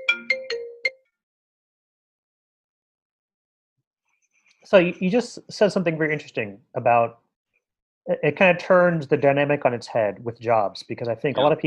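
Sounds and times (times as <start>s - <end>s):
short electronic phone ringtone: 0.0s - 1.1s
speech: 4.6s - 7.2s, 8.0s - 11.6s.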